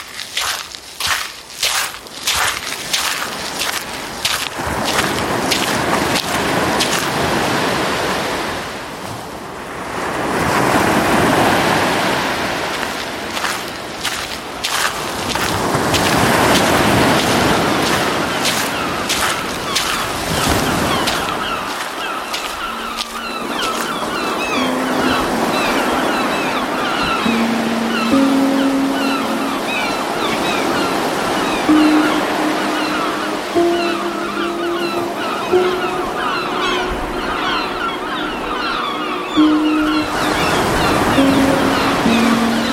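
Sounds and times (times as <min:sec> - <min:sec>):
seaside waves rushing and fizzing: 0:00.0 - 0:42.7
higher calls: 0:16.2 - 0:42.7
wavering tones: 0:21.0 - 0:42.7.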